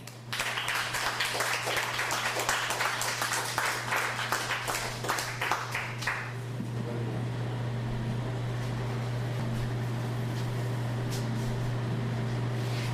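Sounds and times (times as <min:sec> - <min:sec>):
audience clapping at a live reading event: 0:00.0 - 0:06.4
low constant electrical hum: 0:00.0 - 0:12.9.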